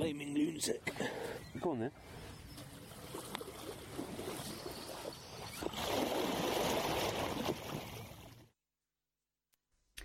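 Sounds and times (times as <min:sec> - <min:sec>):
speech: 0:00.0 - 0:02.3
people splashing around in cold open water: 0:02.7 - 0:08.4.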